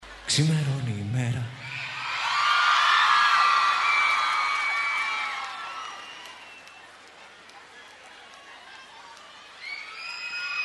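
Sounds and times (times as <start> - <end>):
speech: 0.3 - 1.7
crowd shouting and cheering: 1.5 - 10.6.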